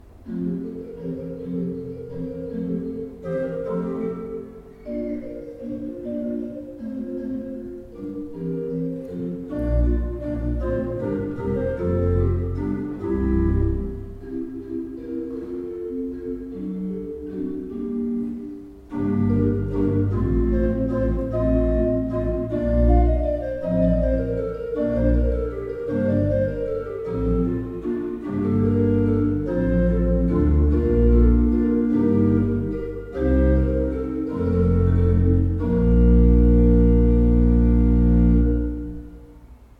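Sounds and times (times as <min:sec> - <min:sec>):
used Bosch pipe organ: 0:00.0 - 0:39.4.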